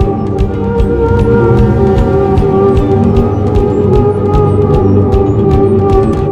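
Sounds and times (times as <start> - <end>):
music loop: 0.4 - 6.1.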